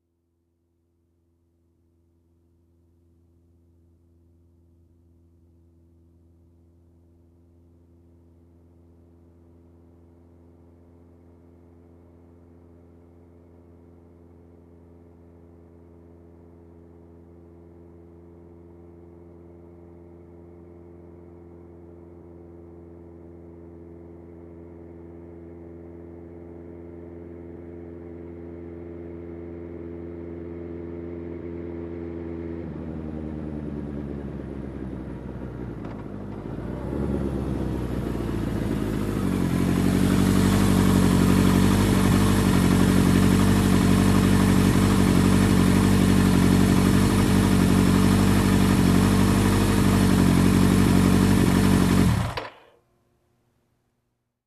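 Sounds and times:
motorcycle approaching slowly and parking: 9.6s - 52.8s.

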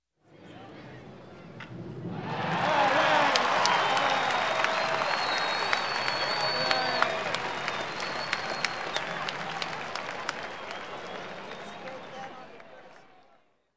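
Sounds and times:
baseball game audience cheering: 2.1s - 12.8s.

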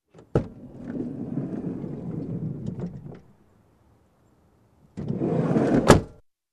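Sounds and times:
car sliding door opening and closing: 0.1s - 3.3s, 5.0s - 6.2s.

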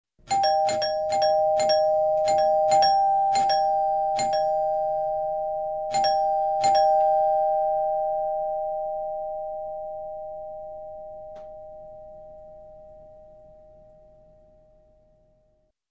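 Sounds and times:
doorbell ringing: 0.3s - 14.5s.

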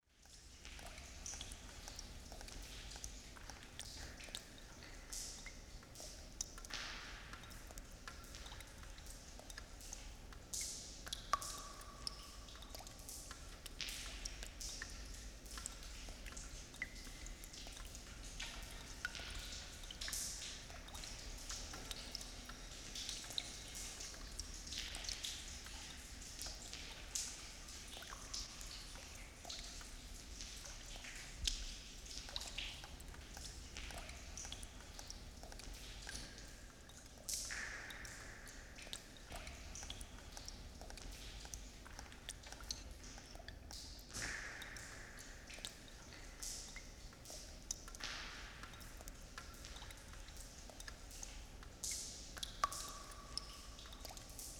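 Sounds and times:
water dripping in a cave interior: 0.0s - 54.5s.

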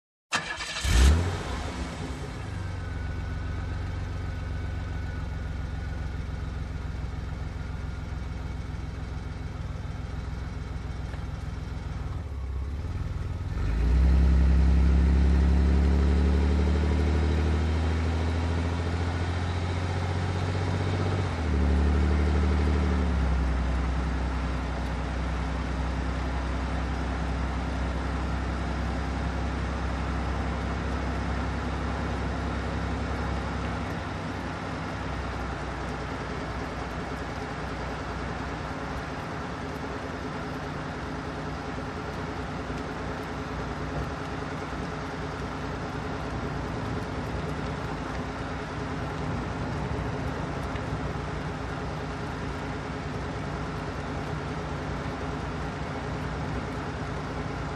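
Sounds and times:
car engine ignition: 0.3s - 57.7s.

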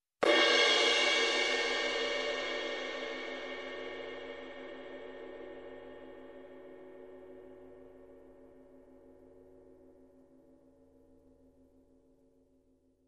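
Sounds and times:
long crash cymbal hit: 0.2s - 6.3s.

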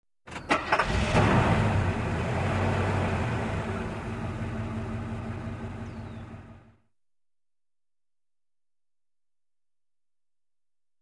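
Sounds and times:
old car engine starting: 0.3s - 6.8s.

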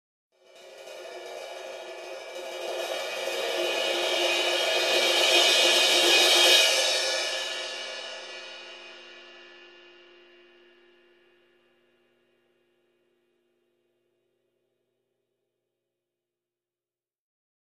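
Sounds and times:
long drum and cymbal climax: 0.4s - 11.1s.

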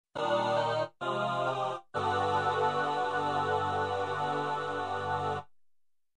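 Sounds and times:
synthetic choir chords: 0.2s - 5.5s.

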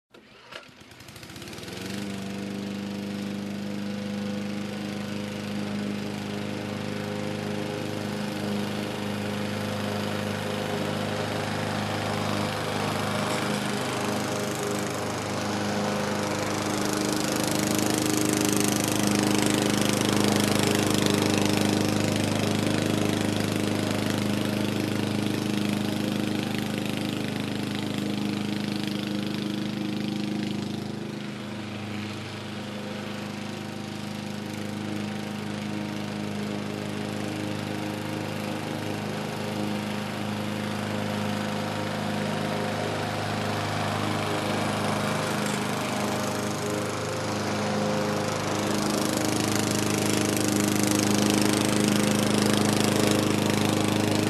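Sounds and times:
lawn mower: 0.1s - 54.2s.

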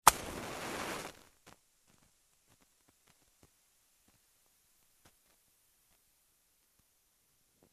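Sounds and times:
match lighting: 0.0s - 3.5s.

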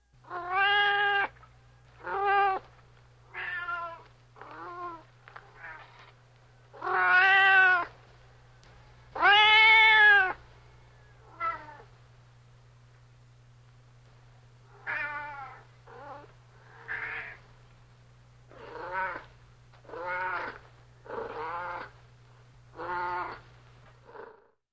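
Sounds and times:
cat asking for bow refill: 0.3s - 1.4s, 2.0s - 2.6s, 3.3s - 6.0s, 6.8s - 7.9s, 9.2s - 10.4s, 14.7s - 17.4s, 18.5s - 19.3s, 19.9s - 20.6s, 22.8s - 23.4s.

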